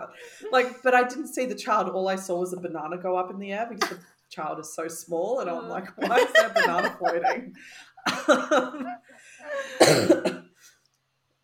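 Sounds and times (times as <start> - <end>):
speech: 0.1 - 10.4
laughter: 5.5 - 9.8
throaty coughs: 9.8 - 10.5.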